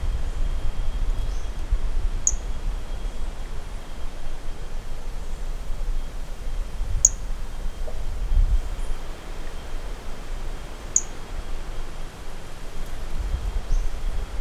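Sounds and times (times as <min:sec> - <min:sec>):
low rumbling wind: 0:00.0 - 0:14.3
Brachycephalus mirissimus chirping: 0:03.8 - 0:11.3.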